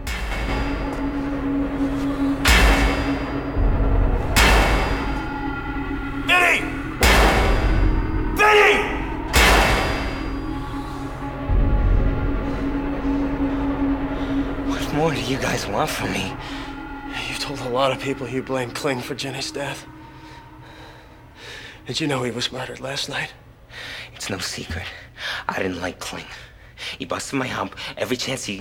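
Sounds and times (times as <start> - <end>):
heavy metallic hammer blows: 0.0 - 11.0
steady low hum: 0.0 - 23.7
speech: 15.3 - 16.6, 17.5 - 20.0, 21.9 - 23.4, 24.2 - 28.6.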